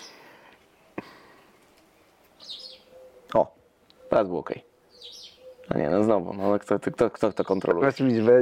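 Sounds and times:
birdsong sound effect: 0.0s - 8.4s
high chirping chatter: 2.0s - 8.4s
speech: 3.3s - 4.7s, 5.7s - 8.4s.

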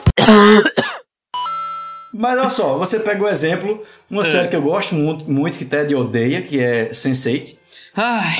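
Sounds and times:
person clearing throat: 0.1s - 1.0s
person coughing: 0.1s - 1.1s
speech: 0.3s - 0.8s, 2.2s - 8.3s.

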